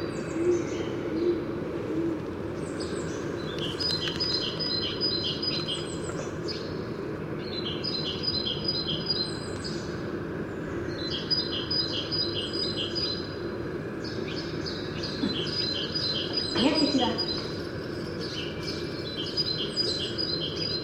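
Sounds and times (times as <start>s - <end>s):
steady outdoor noise: 0.0s - 20.8s
faint low hoots: 0.3s - 2.6s
great tit repeating sharp two-part notes: 2.6s - 6.8s, 7.4s - 9.9s, 10.9s - 13.4s, 14.0s - 20.8s.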